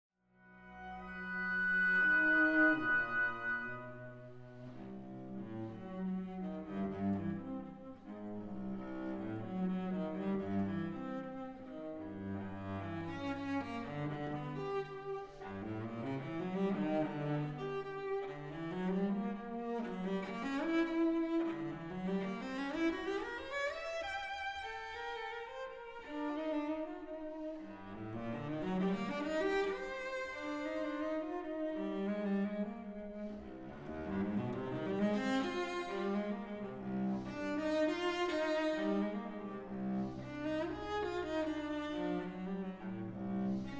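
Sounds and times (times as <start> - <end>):
cello cadenza: 0.4 - 43.7.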